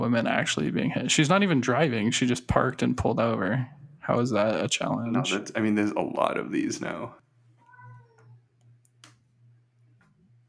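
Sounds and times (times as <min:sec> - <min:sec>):
low steady hum: 0:00.0 - 0:10.4
speech: 0:00.1 - 0:07.2
cat meowing: 0:07.6 - 0:08.4.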